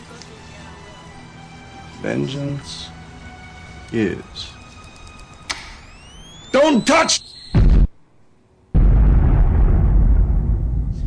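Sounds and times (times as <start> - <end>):
speech: 2.0 - 3.0, 3.9 - 4.6, 6.6 - 7.4
bomb explosion: 7.6 - 7.9, 8.7 - 11.0.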